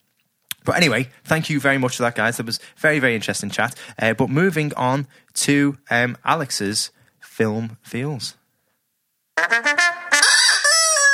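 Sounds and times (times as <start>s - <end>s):
speech: 0.7s - 8.4s, 9.4s - 9.8s
squeaky rubber chicken squawking: 10.1s - 11.1s.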